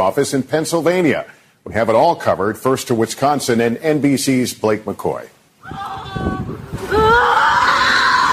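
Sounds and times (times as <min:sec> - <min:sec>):
speech: 0:00.0 - 0:06.3
office workers screaming in anguish while fleeing a shooting in Middleton, Wisconsin: 0:05.6 - 0:08.3.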